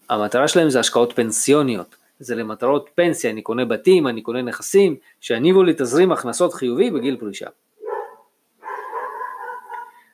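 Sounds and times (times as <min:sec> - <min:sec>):
speech: 0:00.1 - 0:07.7
dog barking: 0:05.8 - 0:06.1, 0:07.8 - 0:10.1.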